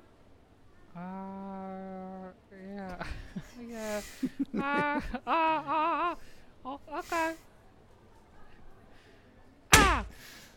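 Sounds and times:
laughter: 2.9s - 7.4s
speech: 3.7s - 6.3s, 7.0s - 7.4s
slap across the face: 9.7s - 10.2s.

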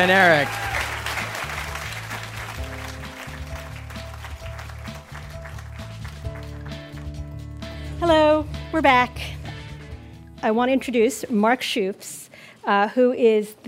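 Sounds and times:
speech: 0.0s - 0.7s, 8.0s - 9.3s, 10.4s - 13.6s
crowd applauding: 0.0s - 7.5s
upbeat bass-heavy music bed: 0.0s - 10.0s.

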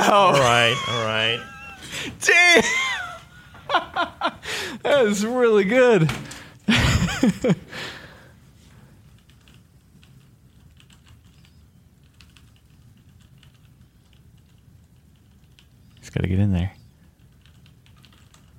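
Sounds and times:
laughter: 0.0s - 4.5s, 6.7s - 7.7s
speech: 0.1s - 2.9s, 3.8s - 8.0s, 16.2s - 16.8s
typing on mechanical keyboard with tactile brown switches: 9.1s - 16.1s, 17.1s - 18.5s.

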